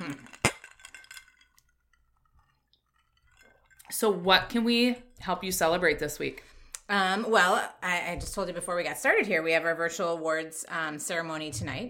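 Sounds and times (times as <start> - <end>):
glasses clinking together in a toast: 0.0 - 4.0
speech: 3.9 - 11.8.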